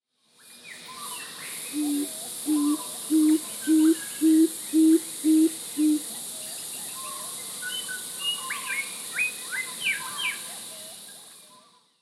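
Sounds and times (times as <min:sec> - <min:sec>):
Superb fruit dove Ptilinopus superbus superbus calling: 0:01.7 - 0:06.1.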